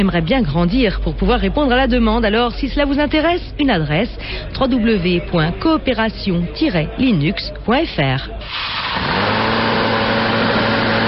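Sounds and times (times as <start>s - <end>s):
speech: 0.0s - 9.4s
compressed-air scooter engine droning: 8.4s - 11.0s.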